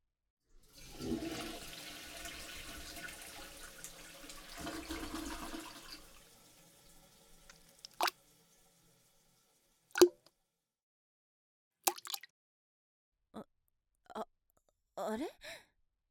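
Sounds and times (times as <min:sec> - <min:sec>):
toilet flushing away a large stool: 0:00.6 - 0:10.0
water dripping: 0:00.8 - 0:10.3, 0:11.9 - 0:12.3
speech: 0:15.1 - 0:15.6.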